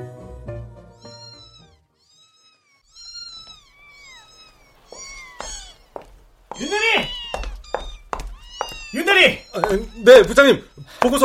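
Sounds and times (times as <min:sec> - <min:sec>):
cat meowing: 0:00.9 - 0:11.2
speech: 0:09.7 - 0:11.2.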